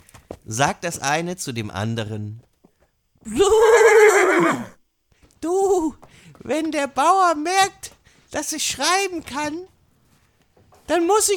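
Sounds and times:
speech: 0.5 - 2.5, 3.2 - 4.8, 5.4 - 9.7, 10.9 - 11.3
horse neighing: 3.4 - 4.8.

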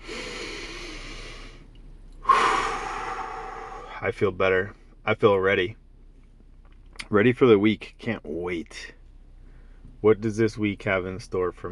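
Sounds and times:
deep breath: 0.0 - 4.0, 9.4 - 9.9
speech: 4.0 - 5.8, 7.1 - 9.0, 10.0 - 11.6.

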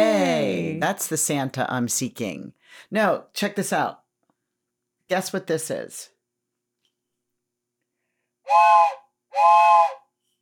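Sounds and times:
speech: 0.8 - 4.0, 5.1 - 6.1, 8.5 - 10.0
train whistle blasts with steamy hiss: 8.5 - 10.0.

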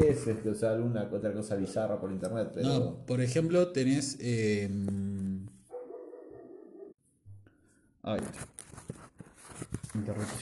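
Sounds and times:
speech: 0.1 - 5.1, 8.0 - 8.7, 9.9 - 10.4
dog barking: 5.7 - 7.0.

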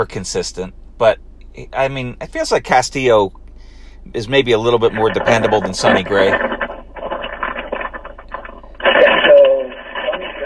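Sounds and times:
speech: 0.0 - 3.4, 4.0 - 6.5
crackly static on a phone call connection: 4.4 - 10.4.

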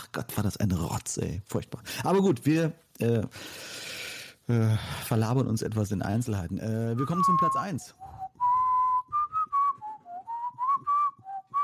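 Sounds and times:
speech: 0.2 - 8.2
person whistling a short melody into a microphone: 7.0 - 11.6.

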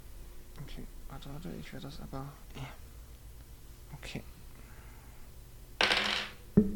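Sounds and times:
speech: 0.7 - 2.8, 3.9 - 4.4
dice clattering across a hard tabletop: 5.8 - 6.4.

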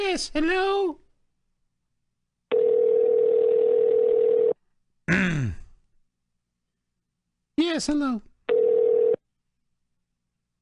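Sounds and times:
speech: 0.2 - 1.0, 7.7 - 8.3
telephone ringback tone of a call to a press office: 2.5 - 4.6, 8.5 - 9.2.

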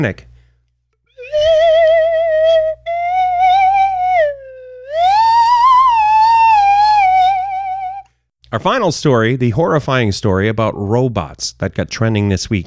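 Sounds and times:
speech: 0.0 - 0.3, 8.5 - 12.6
slide whistle playing a slow wavering melody: 1.1 - 8.1.

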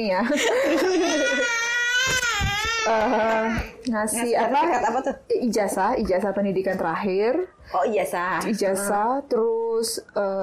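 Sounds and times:
speech: 0.0 - 10.4
baby crying loudly: 0.9 - 3.5.

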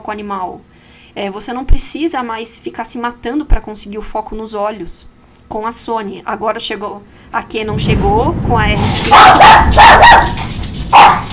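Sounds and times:
speech: 0.0 - 10.4
dog barking: 9.0 - 11.3.

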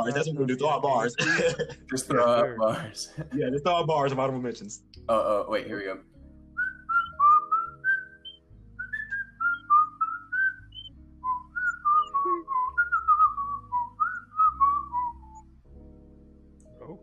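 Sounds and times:
laughter: 0.0 - 4.5
speech: 0.0 - 6.1
steady low musical backing: 0.0 - 17.0
person whistling a bouncy melody: 6.6 - 15.4.

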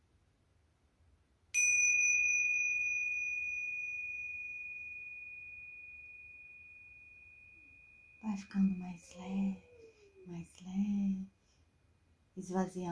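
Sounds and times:
Tibetan singing bowl struck and ringing: 1.6 - 10.6
speech: 8.4 - 9.7, 10.3 - 11.4, 12.4 - 12.9.

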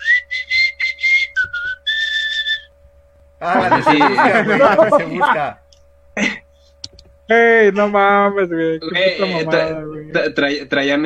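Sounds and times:
tamale vendor whistling a waltz tune: 0.0 - 2.7
faint steady hum: 0.0 - 11.0
laughter: 3.4 - 5.6
speech: 3.4 - 5.6, 7.3 - 11.0.

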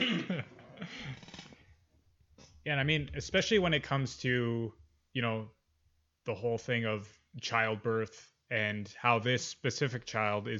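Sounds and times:
person giving a staged cough: 0.0 - 1.0
throat clearing: 0.0 - 1.2
speech: 2.6 - 5.6, 6.3 - 10.5.

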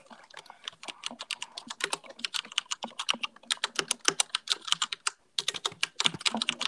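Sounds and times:
computer keyboard keys clicking: 0.3 - 6.6.

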